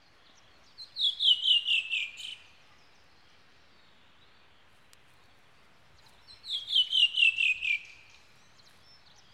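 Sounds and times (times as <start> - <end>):
wood thrush song: 0.0 - 9.3.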